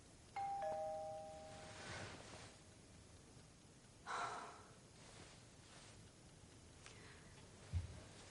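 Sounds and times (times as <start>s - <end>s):
faint rustling: 1.2s - 2.8s, 4.9s - 8.2s
soft breathing: 1.4s - 2.6s, 4.0s - 6.1s, 6.8s - 8.2s.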